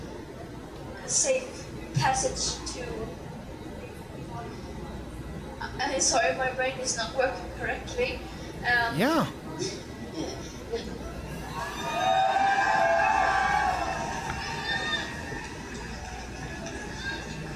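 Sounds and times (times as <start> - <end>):
speech: 1.1 - 3.2, 5.8 - 10.9
crowd cheering: 11.6 - 16.0.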